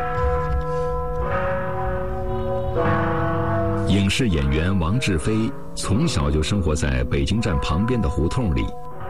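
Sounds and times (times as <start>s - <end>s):
railway station clock tower bell chiming to mark the time: 0.0s - 9.0s
speech: 3.9s - 8.9s.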